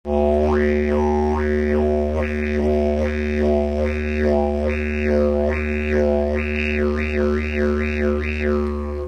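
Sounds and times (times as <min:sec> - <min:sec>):
fast ooee didgeridoo: 0:00.1 - 0:09.0.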